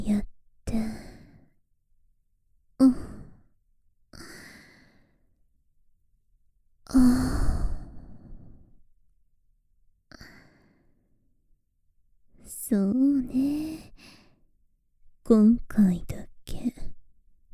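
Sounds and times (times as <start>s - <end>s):
speech: 0.1s - 0.9s, 15.3s - 15.8s
woman breathing in soft airy sighs: 0.7s - 1.6s, 4.2s - 5.3s, 6.9s - 8.8s, 10.1s - 11.2s, 13.4s - 14.5s.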